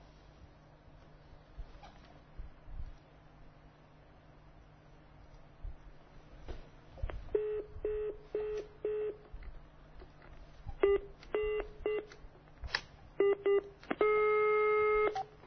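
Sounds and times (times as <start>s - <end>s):
long steady telephone tone: 7.3s - 9.4s, 10.8s - 12.2s, 13.2s - 15.4s
telephone busy signal beeps: 10.8s - 12.0s, 13.2s - 15.2s.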